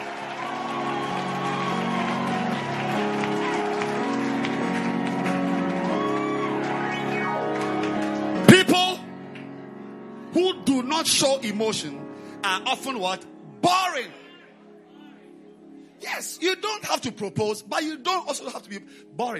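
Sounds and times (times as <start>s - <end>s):
large crowd clapping, shouting and cheering: 0.0s - 9.9s
speech: 10.9s - 14.2s, 16.4s - 19.3s.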